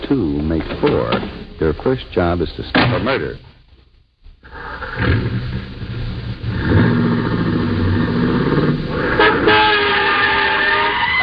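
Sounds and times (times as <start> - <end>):
speech: 0.1 - 3.5
car engine revving and pulling away: 4.5 - 10.0
car horn honking: 9.2 - 11.2.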